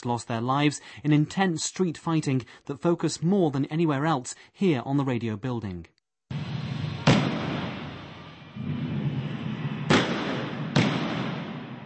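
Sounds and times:
speech: 0.0s - 5.9s
rumbling street backdrop: 6.3s - 11.8s
gunshot-like cracks in an open urban space: 7.0s - 8.0s, 9.9s - 11.8s.

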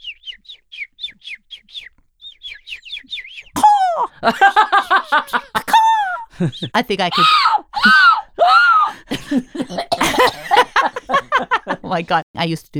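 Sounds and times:
person whistling to mimic bird chirps: 0.0s - 7.5s
laughter: 3.6s - 12.2s
speech: 4.0s - 5.6s, 6.4s - 8.0s, 11.9s - 12.7s.

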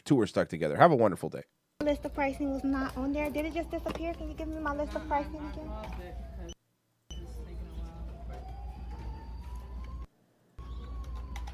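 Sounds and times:
speech: 0.1s - 6.3s
emergency vehicle siren wailing faintly: 2.0s - 6.6s, 7.3s - 11.5s.

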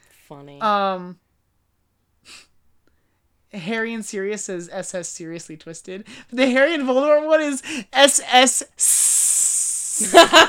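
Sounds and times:
speech: 0.3s - 1.2s, 3.5s - 9.3s, 10.0s - 10.4s
person making a snake-like hiss: 8.8s - 10.2s.

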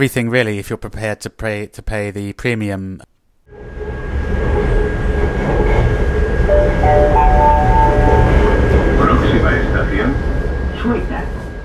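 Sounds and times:
speech: 0.0s - 3.8s
metro train rolling along rails: 3.6s - 11.6s.

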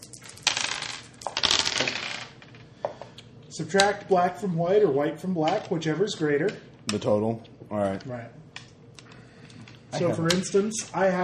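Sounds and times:
dice being rolled by tabletop game players: 0.0s - 2.4s
speech: 3.6s - 8.4s, 9.9s - 11.2s.

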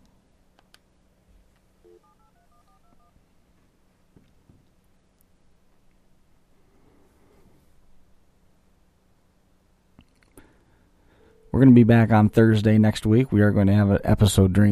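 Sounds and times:
faint hiss: 0.0s - 14.7s
steady low hum: 0.0s - 14.7s
telephone touch-tone dialing beeps: 1.9s - 3.1s
speech: 11.6s - 14.7s.

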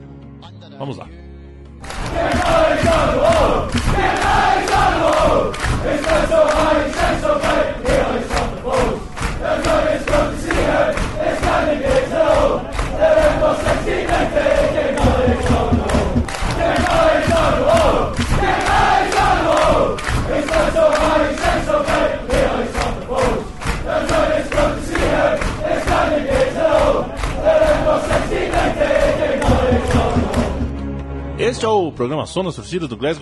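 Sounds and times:
speech: 0.8s - 1.2s, 31.5s - 33.1s
big football crowd singing a terrace chant in a packed stand: 1.8s - 30.8s.

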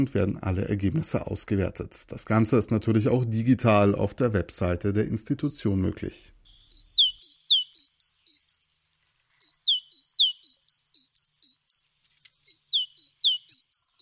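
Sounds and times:
speech: 0.0s - 6.4s
great tit singing bright two-note phrases: 6.5s - 8.7s, 9.4s - 11.9s, 12.5s - 14.0s.

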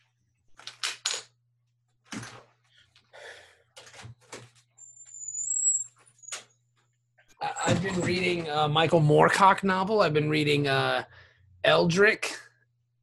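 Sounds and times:
thin high squeak: 4.8s - 6.5s
door opening to let a dog out: 7.4s - 8.6s
speech: 7.7s - 11.1s, 11.7s - 12.3s.

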